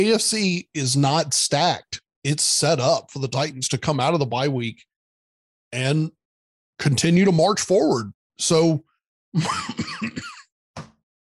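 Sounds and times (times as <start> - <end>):
speech: 0.0 - 4.9, 5.7 - 6.2, 6.8 - 10.3
person with a cold coughing: 9.4 - 10.5.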